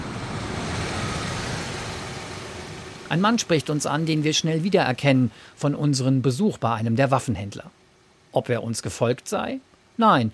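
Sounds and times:
car engine rumble: 0.0s - 5.5s
road noise: 0.0s - 6.4s
speech: 3.1s - 7.8s, 8.4s - 10.3s.

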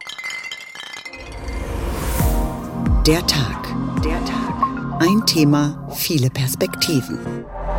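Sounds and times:
glasses clinking in a toast: 0.0s - 2.2s
speech: 3.1s - 7.6s.

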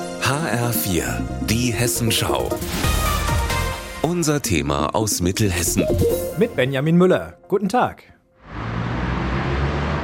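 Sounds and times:
speech: 0.3s - 3.1s, 4.0s - 8.1s
dense rumble of passing vehicles at a busy city intersection: 8.4s - 10.0s.

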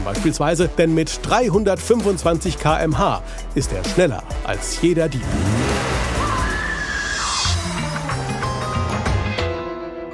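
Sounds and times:
speech: 0.0s - 5.7s
Ferrari police sports car tires squealing: 5.0s - 8.9s
Ferrari police sports car engine roaring while accelerating hard: 5.0s - 9.0s.

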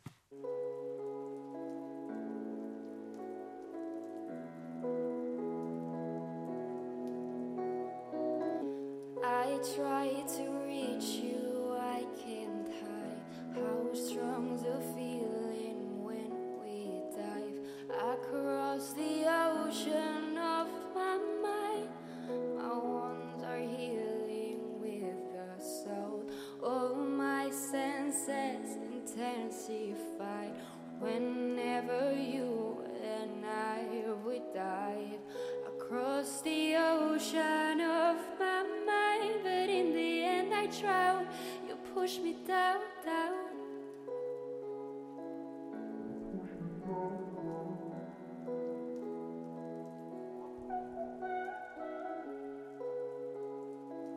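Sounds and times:
soft sustained keyboard-like chords: 0.3s - 54.1s
recorded pop song: 8.1s - 44.4s, 46.0s - 49.2s, 50.6s - 53.2s
speech: 9.6s - 11.4s.

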